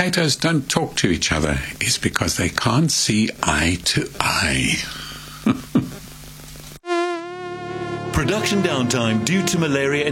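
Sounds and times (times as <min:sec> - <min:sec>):
speech: 0:00.0 - 0:06.0, 0:08.2 - 0:10.0
mosquito buzzing: 0:06.8 - 0:10.0.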